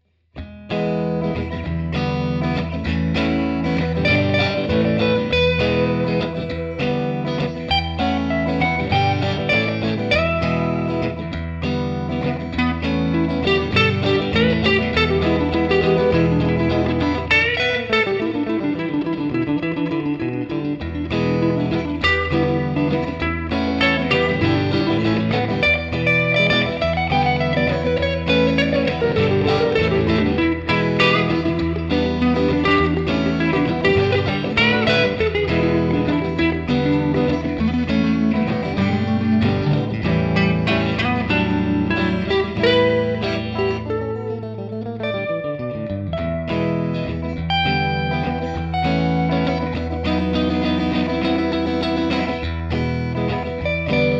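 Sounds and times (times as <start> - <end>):
Deluxe Reverb guitar amplifier cabinet: 0.0 - 54.1.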